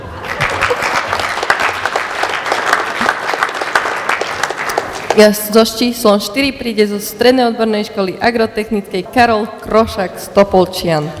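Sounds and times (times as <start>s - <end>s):
crowd applauding, many hands clapping: 0.0s - 5.4s
speech: 5.2s - 11.1s.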